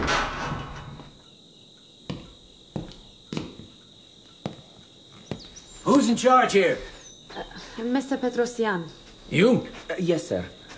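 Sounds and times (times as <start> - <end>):
front door swinging open with a soft rushing noise: 0.0 - 1.2
crickets chirping: 0.0 - 10.7
speech: 5.8 - 10.6.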